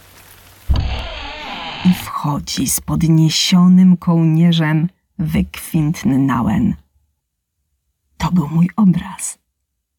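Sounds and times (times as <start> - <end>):
light drizzling rain: 0.0 - 1.8
dull thump: 0.7 - 1.2
speech: 1.8 - 6.8, 8.2 - 9.4.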